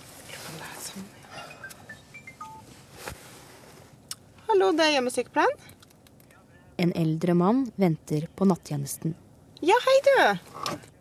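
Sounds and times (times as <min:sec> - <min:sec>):
speech: 0:01.0 - 0:01.2, 0:04.6 - 0:05.7, 0:06.8 - 0:10.8
telephone ringing with short electronic tones: 0:01.4 - 0:02.6.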